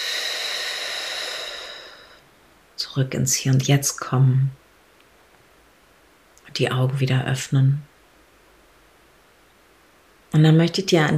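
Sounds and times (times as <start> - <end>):
deep exhale through the mouth during a guided relaxation breathing exercise: 0.0 - 2.2
speech: 2.9 - 4.6, 6.6 - 7.9, 10.3 - 11.1.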